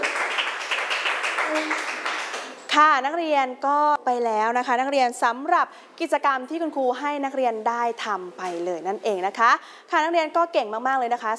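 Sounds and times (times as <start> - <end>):
classroom students clapping for a classmate: 0.0 - 2.7
speech: 1.5 - 1.9, 2.8 - 11.3.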